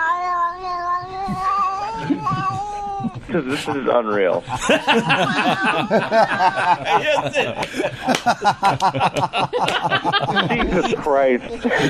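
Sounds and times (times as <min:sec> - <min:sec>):
cat yowling while being bathed: 0:00.0 - 0:03.2
speech: 0:01.3 - 0:11.8
laughter: 0:01.8 - 0:11.8.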